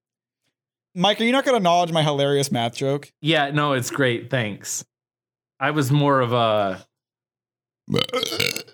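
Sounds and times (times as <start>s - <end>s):
speech: 1.0s - 4.9s, 5.6s - 6.9s, 7.9s - 8.7s
long loud burp: 7.9s - 8.7s.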